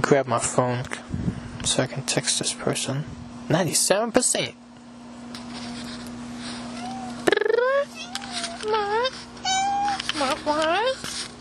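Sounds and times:
steady low hum: 0:00.0 - 0:11.3
speech: 0:00.1 - 0:04.7
house cat meowing: 0:06.6 - 0:10.4.

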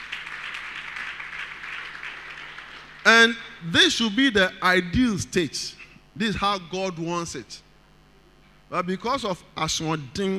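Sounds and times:
crowd clapping hands in sustained applause: 0:00.0 - 0:03.5
speech: 0:03.1 - 0:07.6, 0:08.7 - 0:10.3.

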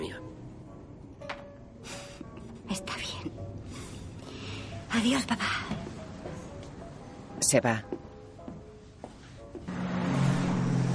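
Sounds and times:
speech: 0:05.0 - 0:05.7, 0:07.5 - 0:08.0
patrol car engine hum: 0:09.7 - 0:10.9
patrol car tire noise on a road: 0:09.7 - 0:10.9.

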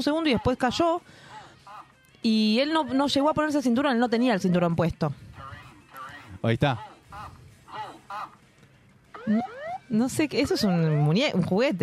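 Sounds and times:
speech: 0:00.0 - 0:01.3, 0:02.2 - 0:05.2, 0:06.4 - 0:07.3, 0:09.2 - 0:11.8
airplane low-altitude warning alarm rising electronic wail: 0:09.1 - 0:10.0
airplane low-altitude warning alarm buzzy harmonic beeps: 0:09.2 - 0:11.4.

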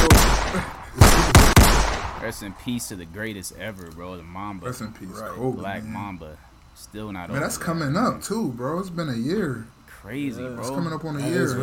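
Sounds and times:
sharp gunshot blasts with tail: 0:00.0 - 0:02.6
speech: 0:02.3 - 0:11.6.

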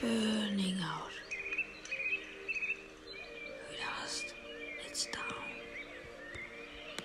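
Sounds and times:
birds chirping at dusk: 0:00.0 - 0:07.0.

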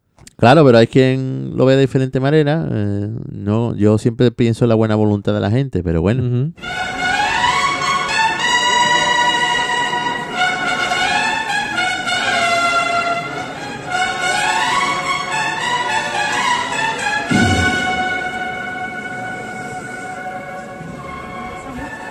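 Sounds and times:
speech: 0:00.4 - 0:07.0
brass band playing a slow solemn processional march: 0:06.6 - 0:22.0
low drum thump: 0:17.3 - 0:19.0.

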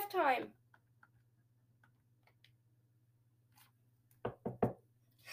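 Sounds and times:
knocks on a wooden surface: 0:04.2 - 0:04.8.

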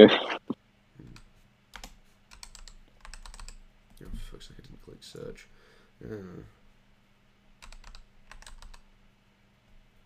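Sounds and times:
speech: 0:00.0 - 0:00.3, 0:05.1 - 0:06.6
computer keyboard keystrokes: 0:01.8 - 0:03.6, 0:07.6 - 0:08.8.

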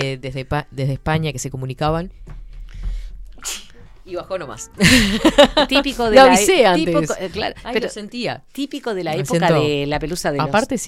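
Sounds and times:
speech: 0:00.0 - 0:02.4, 0:03.4 - 0:10.8
quiet breathing: 0:02.2 - 0:04.0
person sneezing: 0:03.4 - 0:03.8
laughter: 0:04.8 - 0:06.0.

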